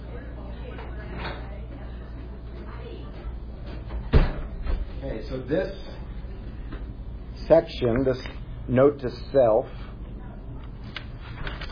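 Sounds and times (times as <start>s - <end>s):
steady low room hum: 0.0s - 11.7s
door shut at the start of a class: 4.0s - 4.9s
speech: 5.1s - 5.9s, 7.5s - 9.8s.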